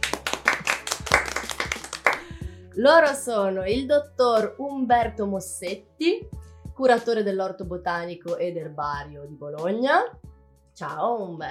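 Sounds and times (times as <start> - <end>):
audience applause welcoming guests at a public talk: 0.0 - 2.2
speech: 2.8 - 11.4.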